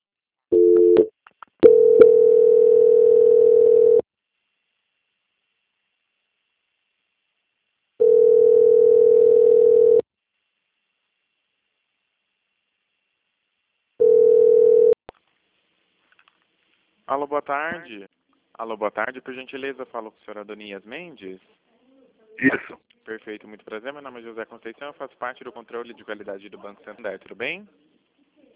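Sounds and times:
telephone line tones during a bank customer call transfer: 0.5s - 4.0s, 8.0s - 10.0s, 14.0s - 15.0s
speech: 17.3s - 21.6s, 22.4s - 27.9s.

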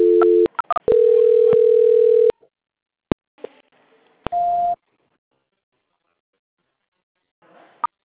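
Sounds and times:
steady flat telephone line tone during a call transfer: 0.0s - 2.3s.

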